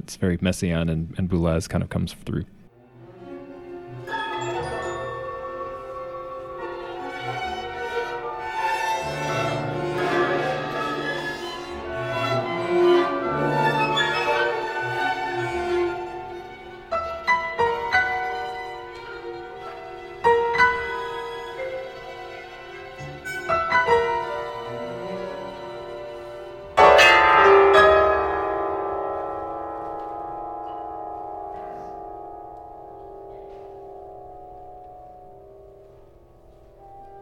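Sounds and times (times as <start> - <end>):
speech: 0.0 - 2.6
dense shimmering sustained orchestral harmonies: 2.6 - 37.2
sharp clanging piano chords: 3.1 - 37.2.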